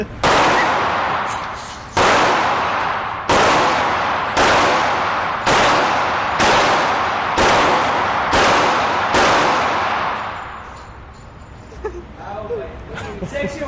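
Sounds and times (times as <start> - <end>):
machine gun firing: 0.2 - 10.6.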